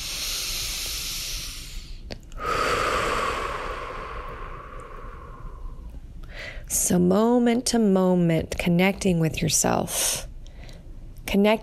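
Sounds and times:
person breathing during a guided meditation: 0:00.0 - 0:06.7, 0:10.5 - 0:11.0
speech: 0:06.9 - 0:10.3, 0:11.3 - 0:11.6.

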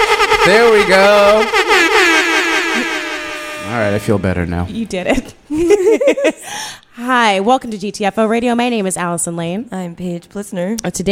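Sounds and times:
air horn blast: 0:00.0 - 0:05.2
speech: 0:00.4 - 0:02.2, 0:03.7 - 0:11.1
laughter: 0:05.0 - 0:06.5.

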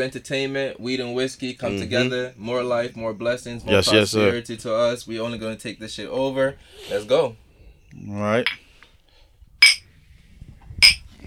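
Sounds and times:
speech: 0:00.0 - 0:08.6
glasses clinking in a toast: 0:09.6 - 0:09.8.

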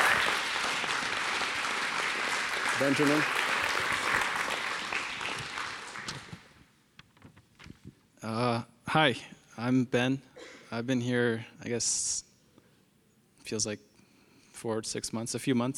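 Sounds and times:
audience applauding: 0:00.0 - 0:06.6
speech: 0:02.8 - 0:03.4, 0:08.3 - 0:12.3, 0:13.5 - 0:13.9, 0:14.6 - 0:15.7.

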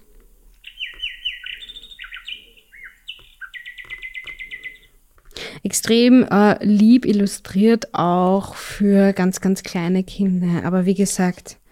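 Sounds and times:
nightingale singing from a sound book: 0:00.0 - 0:05.0
speech: 0:05.6 - 0:11.6.

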